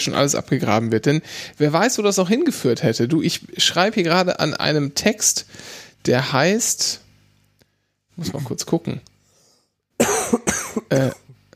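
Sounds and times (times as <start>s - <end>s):
speech: 0.0s - 7.0s, 8.2s - 9.1s, 10.9s - 11.2s
person coughing: 10.0s - 11.4s.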